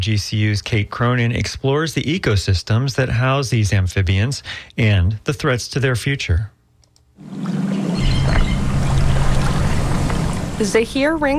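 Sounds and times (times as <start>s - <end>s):
speech: 0.0s - 6.6s, 7.2s - 7.8s, 10.6s - 11.3s
people wading through waist-deep swamp water looking for frogs in Florida: 7.2s - 10.8s.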